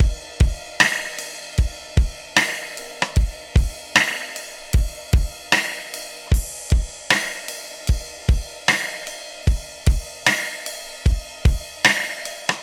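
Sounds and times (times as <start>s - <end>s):
processed live trip hop drum loops: 0.0s - 12.6s.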